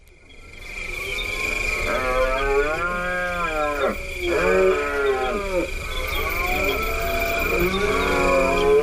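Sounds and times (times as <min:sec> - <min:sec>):
steady high-pitched drone: 0:00.0 - 0:08.8
red deer stag bellowing during the rut: 0:01.8 - 0:08.8.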